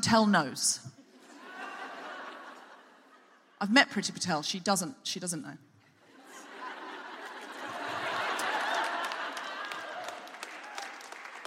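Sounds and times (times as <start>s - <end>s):
speech: 0.0s - 0.9s, 3.6s - 5.7s
audience laughing: 1.0s - 3.6s, 6.0s - 10.5s
audience clapping: 7.2s - 11.4s.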